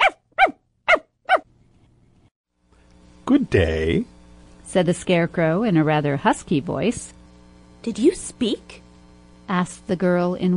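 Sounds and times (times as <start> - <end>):
small dog barking: 0.0 - 1.4
speech: 3.3 - 4.1, 4.7 - 7.2, 7.8 - 8.8, 9.5 - 10.5.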